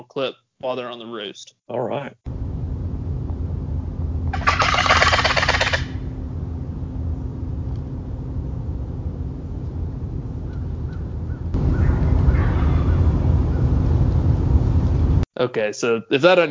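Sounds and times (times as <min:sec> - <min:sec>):
speech: 0:00.0 - 0:02.3, 0:15.4 - 0:16.5
steady low rumble: 0:02.3 - 0:15.3
rapid rattling gobble on a turkey box call: 0:04.3 - 0:06.0
turkey gobbles: 0:04.3 - 0:06.0, 0:10.5 - 0:13.6
crow calling outdoors: 0:04.4 - 0:06.0, 0:10.5 - 0:13.2.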